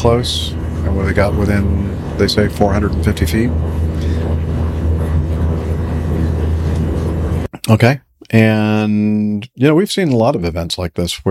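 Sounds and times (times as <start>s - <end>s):
speech: 0.0s - 4.4s, 7.7s - 11.2s
steady loud engine drone with low-frequency rumble: 0.0s - 7.6s.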